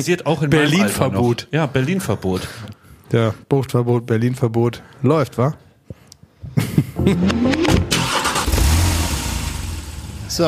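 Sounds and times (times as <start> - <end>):
speech: 0.0 - 5.7, 6.5 - 7.9
car engine starting and running heard from inside the vehicle: 7.2 - 10.4.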